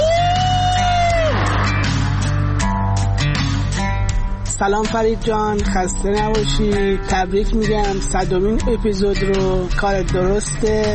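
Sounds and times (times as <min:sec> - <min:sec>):
people screaming and whooping in a tunnel: 0:00.0 - 0:02.1
steady low rumble: 0:00.8 - 0:10.9
speech: 0:04.6 - 0:10.9.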